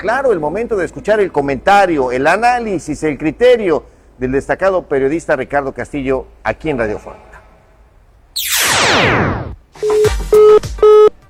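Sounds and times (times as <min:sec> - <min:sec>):
speech: 0:00.0 - 0:07.3, 0:08.4 - 0:11.2
falling swoosh as a phone call cuts off: 0:08.4 - 0:09.6
telephone disconnect tone beeps as a call cuts off: 0:09.8 - 0:11.1.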